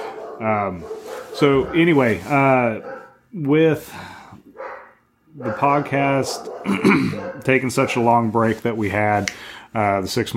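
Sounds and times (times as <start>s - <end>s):
female dog barking and yipping: 0.0s - 2.2s, 2.8s - 3.2s, 4.5s - 7.6s
speech: 0.4s - 4.2s, 5.4s - 10.3s.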